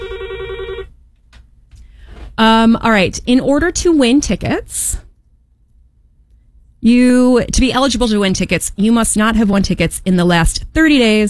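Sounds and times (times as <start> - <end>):
telephone on radio show phone lines ringing electronically: 0.0 - 0.9
speech: 2.4 - 5.0, 6.8 - 11.2.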